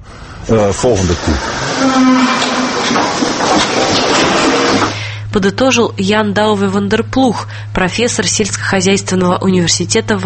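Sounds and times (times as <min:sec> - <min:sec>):
speech: 0:00.4 - 0:10.2
din of a barn full of animals: 0:00.6 - 0:05.0
cows mooing: 0:01.0 - 0:04.9.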